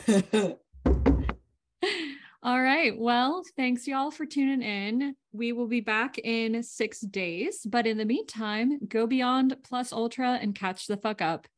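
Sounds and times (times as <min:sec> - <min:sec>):
speech: 0:00.1 - 0:00.6, 0:02.5 - 0:11.5
hollow thumping knocks on wood: 0:00.8 - 0:01.4.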